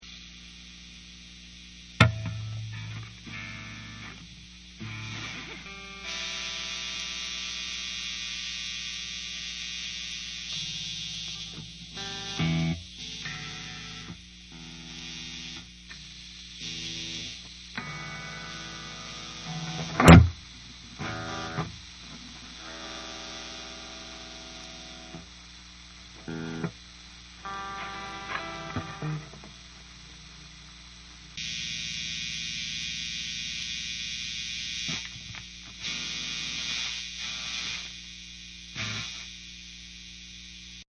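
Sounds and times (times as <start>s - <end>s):
50 watt guitar amplifier idle noise and hum: 0.0s - 40.8s.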